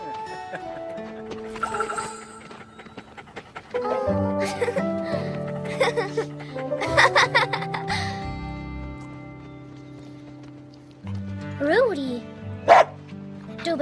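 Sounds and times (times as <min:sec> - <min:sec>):
music: 0:00.0 - 0:13.8
laughter: 0:00.2 - 0:01.5, 0:04.3 - 0:07.9
speech: 0:00.5 - 0:00.9, 0:05.8 - 0:07.4
dog panting: 0:00.6 - 0:06.9.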